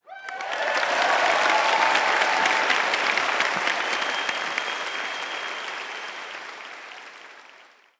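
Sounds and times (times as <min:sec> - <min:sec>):
applause: 0:00.0 - 0:07.9.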